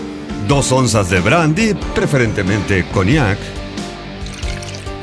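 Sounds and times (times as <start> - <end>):
speech: 0.5 - 3.6
ice cubes clinking into a mixing glass while preparing a cocktail: 4.3 - 4.9.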